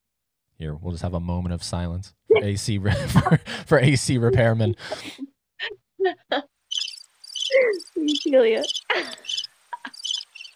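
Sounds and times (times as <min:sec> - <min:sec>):
speech: 0:00.6 - 0:06.5, 0:07.5 - 0:09.3
laughter: 0:02.3 - 0:05.2, 0:08.9 - 0:10.0
crickets chirping: 0:06.7 - 0:10.5.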